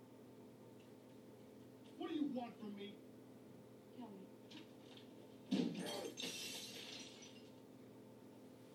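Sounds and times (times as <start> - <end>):
speech: 2.0 - 3.1, 4.0 - 4.7
glass shattering: 5.6 - 7.5.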